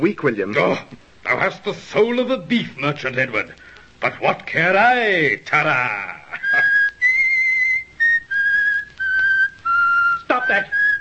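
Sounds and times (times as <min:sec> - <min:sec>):
speech: 0:00.0 - 0:06.7, 0:10.5 - 0:10.8
man whistling a short tune: 0:06.4 - 0:10.9.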